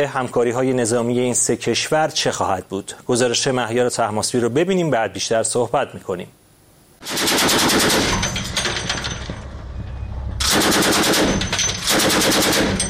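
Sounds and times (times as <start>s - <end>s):
speech: 0.0s - 6.4s, 7.0s - 8.0s
heavy automatic gunfire from warships firing at sea targets in the Indian Ocean: 7.0s - 9.2s, 10.4s - 12.8s
low rumble: 8.5s - 11.5s.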